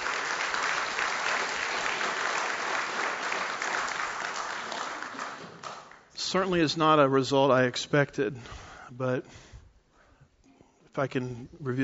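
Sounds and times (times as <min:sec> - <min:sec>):
audience round of applause: 0:00.0 - 0:06.1
speech: 0:06.3 - 0:09.5, 0:11.0 - 0:11.8.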